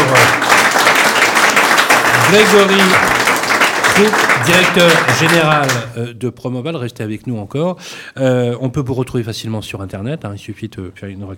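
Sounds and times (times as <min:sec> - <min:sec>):
crowd applauding: 0:00.0 - 0:06.0
speech: 0:02.3 - 0:03.1, 0:04.0 - 0:11.3.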